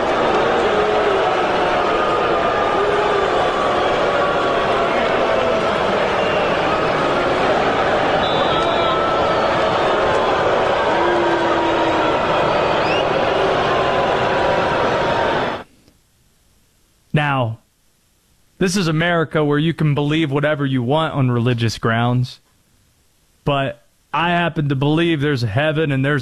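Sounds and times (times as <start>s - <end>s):
huge stadium crowd booing: 0.0s - 15.7s
speech: 18.6s - 22.4s, 23.4s - 26.2s.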